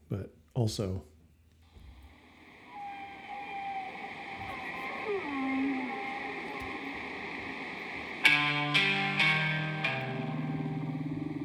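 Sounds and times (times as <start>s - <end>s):
low hiss: 0.0s - 11.4s
speech: 0.1s - 1.1s
gliding whale-like tonal moans in played music: 2.4s - 11.4s
loud bright synth chord stabs: 8.0s - 11.4s.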